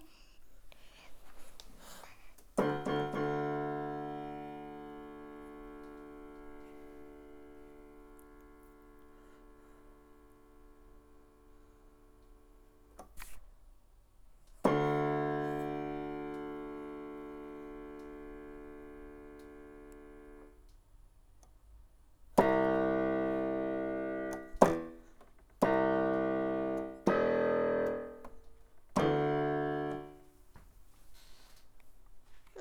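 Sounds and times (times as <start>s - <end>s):
child playing piano: 2.6s - 12.9s, 14.7s - 20.6s, 22.4s - 30.3s.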